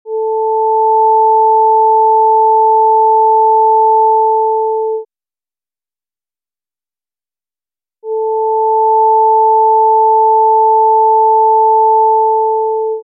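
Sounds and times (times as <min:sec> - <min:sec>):
440 Hz and 880 Hz sine wave tones: 0:00.1 - 0:05.1, 0:08.0 - 0:13.0.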